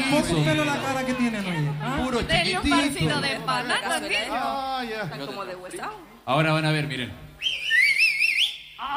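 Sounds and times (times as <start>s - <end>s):
speech: 0.1s - 7.5s
man whistling: 7.4s - 8.8s.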